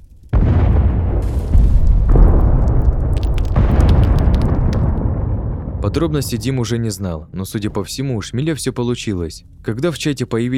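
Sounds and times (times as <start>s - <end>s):
explosion blowing up a farm in Minecraft: 0.4s - 6.9s
speech: 5.9s - 10.5s.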